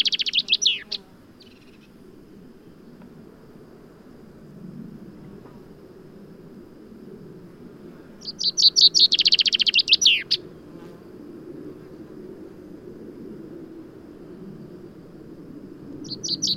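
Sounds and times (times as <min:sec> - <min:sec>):
common chaffinch Fringilla coelebs song: 0:00.0 - 0:02.0, 0:08.2 - 0:10.7, 0:16.0 - 0:16.5.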